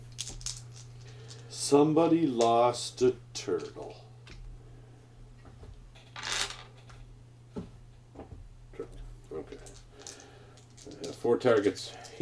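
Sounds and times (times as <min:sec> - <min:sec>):
low steady hum: 0:00.0 - 0:12.2
dice tumbling onto a table: 0:00.1 - 0:01.4, 0:06.0 - 0:06.8, 0:09.5 - 0:11.8
speech: 0:01.7 - 0:04.0, 0:11.3 - 0:12.2.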